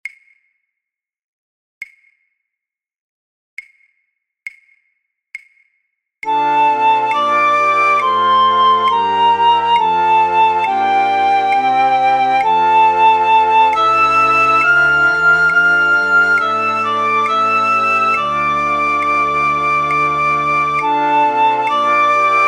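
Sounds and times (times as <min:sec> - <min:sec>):
flute orchestra for practice tracks: 0:06.3 - 0:22.4
piccolo: 0:06.3 - 0:22.4.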